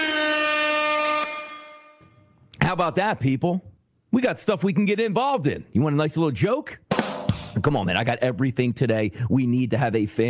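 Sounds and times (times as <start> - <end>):
loud sustained air horn blast: 0.0 - 2.3
speech: 2.7 - 10.2.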